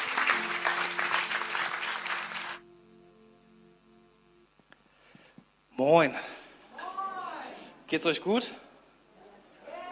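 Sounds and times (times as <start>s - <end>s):
audience applause: 0.0s - 2.6s
faint low hum: 0.0s - 9.9s
speech: 5.8s - 6.4s, 7.9s - 8.6s.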